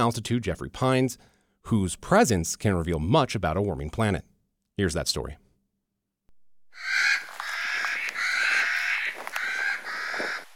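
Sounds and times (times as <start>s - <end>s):
speech: 0.0s - 5.4s
Clark's nutcrackers giving harsh grating crow-like squawks: 6.7s - 10.4s.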